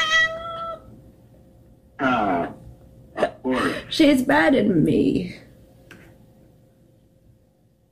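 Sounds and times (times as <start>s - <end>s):
cat meowing: 0.0s - 0.9s
speech: 3.9s - 5.4s.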